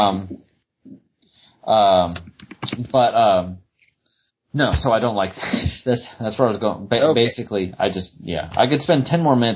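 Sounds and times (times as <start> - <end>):
speech: 0.0 - 0.5, 1.6 - 3.6, 4.5 - 9.5
computer keyboard typing: 2.1 - 2.9.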